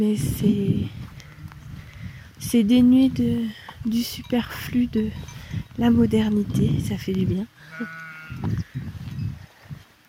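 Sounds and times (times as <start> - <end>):
speech: 0.0 - 1.1, 2.4 - 8.6
flock of ewes bleating: 7.6 - 8.5.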